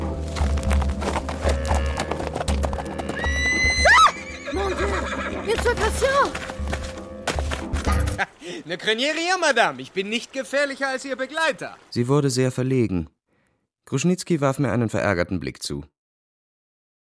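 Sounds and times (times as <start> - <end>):
hooves clip-clopping: 0.0 - 8.2
horse whinnying as its rider whips it: 1.3 - 5.7
speech: 8.5 - 13.2, 13.9 - 16.0.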